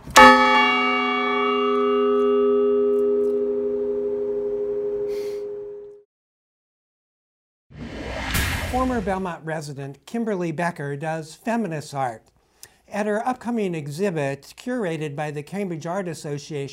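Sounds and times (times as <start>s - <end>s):
bell struck by tower clock mechanism pulling a cable: 0.1s - 5.8s
speech: 8.8s - 12.3s, 12.9s - 16.7s.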